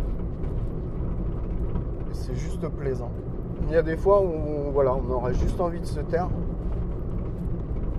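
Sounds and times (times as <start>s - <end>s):
road noise inside a moving car on a long straight road through pine forest: 0.0s - 7.9s
speech: 2.2s - 6.7s.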